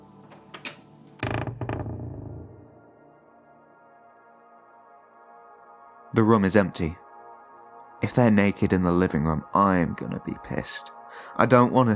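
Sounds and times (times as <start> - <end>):
door creaking as a person swings it open: 0.2 - 2.9
speech: 6.2 - 7.0, 8.0 - 11.9.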